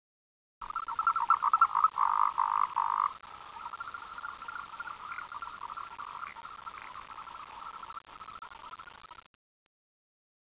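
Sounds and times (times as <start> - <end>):
frog trilling: 0.6 - 8.3
background hiss: 0.6 - 9.0.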